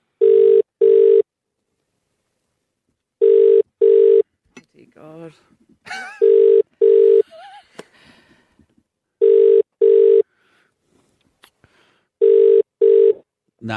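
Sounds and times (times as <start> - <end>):
outgoing phone call double-ring tone: 0.2 - 1.3, 3.2 - 4.2, 6.2 - 7.2, 9.2 - 10.2, 12.2 - 13.2
speech: 5.0 - 5.6.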